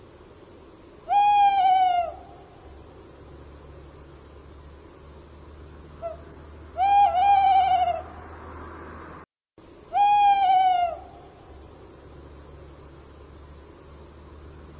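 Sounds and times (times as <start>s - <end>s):
quiet background hiss: 0.0s - 14.7s
bird call with long level harmonic notes: 1.0s - 2.9s, 5.8s - 8.3s, 9.8s - 11.7s.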